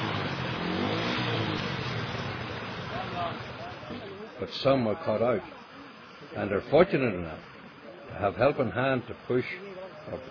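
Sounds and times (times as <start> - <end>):
car engine revving through water: 0.0 - 4.2
speech: 4.4 - 5.6, 6.3 - 7.5, 8.1 - 10.2.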